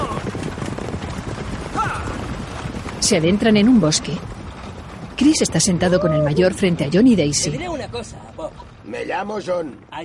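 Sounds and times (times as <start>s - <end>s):
horses galloping in a western film scene: 0.0s - 10.0s
speech: 3.0s - 4.4s, 5.2s - 10.0s
dense noisy background: 3.0s - 10.0s.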